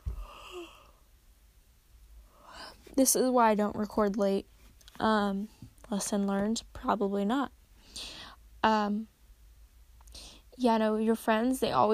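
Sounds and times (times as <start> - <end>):
quiet hiss: 0.0 - 11.9
person yawning: 0.1 - 1.0
speech: 3.0 - 9.1, 10.6 - 11.9.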